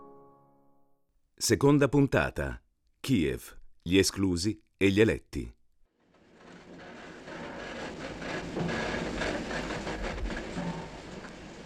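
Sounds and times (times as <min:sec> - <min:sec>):
speech: 0:01.4 - 0:05.6
moving train rumble: 0:06.1 - 0:11.6.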